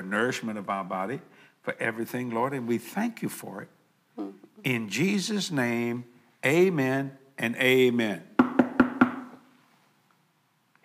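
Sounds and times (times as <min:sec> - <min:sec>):
speech: 0:00.0 - 0:08.3
firm knocks on a wooden door: 0:08.4 - 0:09.4.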